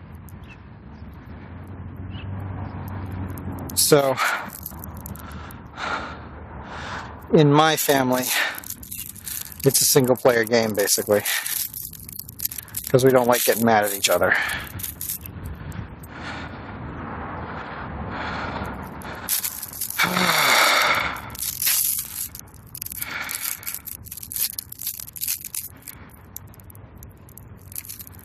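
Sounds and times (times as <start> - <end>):
plastic bag crinkling and rustling: 3.3 - 5.2, 7.6 - 15.6, 18.8 - 28.2
speech: 3.7 - 4.5, 7.3 - 8.5, 9.6 - 11.5, 12.9 - 14.7.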